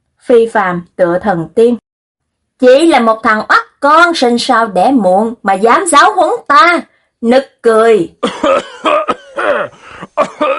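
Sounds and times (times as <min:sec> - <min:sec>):
speech: 0:00.3 - 0:01.8, 0:02.6 - 0:10.5
man coughing up blood hoarsely: 0:08.2 - 0:10.5.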